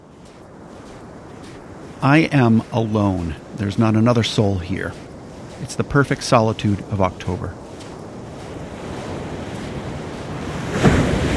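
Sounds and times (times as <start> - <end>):
large ocean waves crashing on the shore: 0.0 - 11.3
wind buffeting the recording: 0.0 - 11.3
speech: 2.0 - 5.0, 5.6 - 7.6.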